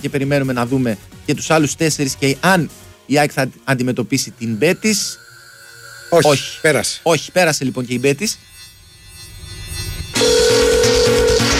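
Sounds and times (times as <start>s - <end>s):
speech: 0.0s - 5.2s, 6.1s - 8.6s
sustained electronic telephone tone: 4.5s - 11.5s.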